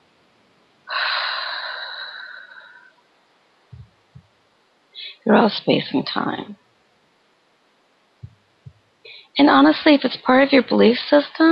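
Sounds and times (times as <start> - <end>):
breathy exhale: 0.9 - 2.9
low thumps: 3.7 - 4.3, 8.2 - 8.9
speech: 5.3 - 6.6, 9.4 - 11.5.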